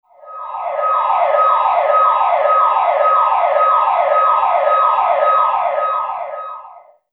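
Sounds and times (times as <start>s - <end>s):
burglar alarm: 0.1s - 7.1s.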